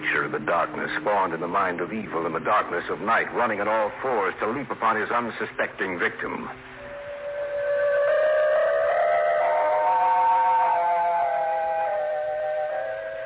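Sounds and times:
speech: 0:00.3 - 0:06.7
steam train whistle at a town station: 0:06.8 - 0:13.2.

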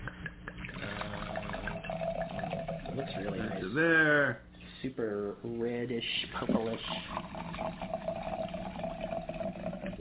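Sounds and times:
red Cabernet wine pouring into a glass: 0:00.6 - 0:03.7, 0:06.4 - 0:09.9
speech: 0:03.0 - 0:08.6.

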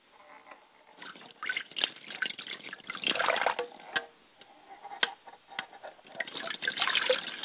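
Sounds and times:
water poured over hands and face, splashing and hitting the ground: 0:01.0 - 0:03.8, 0:06.1 - 0:07.4.

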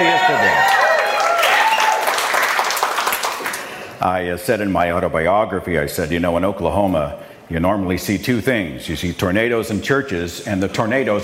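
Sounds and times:
audience applause: 0:00.0 - 0:03.8
speech: 0:04.0 - 0:11.2.

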